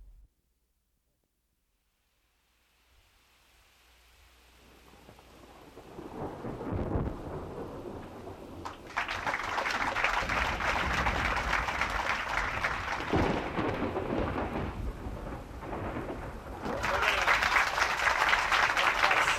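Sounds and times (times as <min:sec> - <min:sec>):
rain hissing in a thunderstorm: 0:02.6 - 0:19.3
rolling thunder in a thunderstorm: 0:04.7 - 0:19.3.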